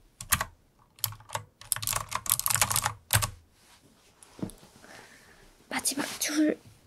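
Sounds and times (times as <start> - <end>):
typing on a computer keyboard: 0.2 - 3.4
speech: 5.9 - 6.7.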